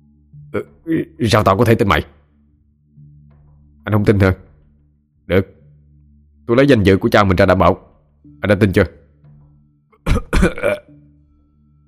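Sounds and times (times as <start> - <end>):
faint steady tone: 0.0 - 11.8
speech: 0.5 - 2.2, 3.9 - 4.4, 5.3 - 5.6, 6.5 - 9.0, 10.0 - 10.8
man choking and coughing while eating: 10.0 - 11.0.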